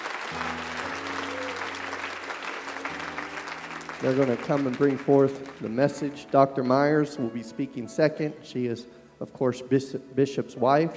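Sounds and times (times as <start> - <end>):
audience applauding: 0.0 - 6.2
speech: 4.0 - 10.9.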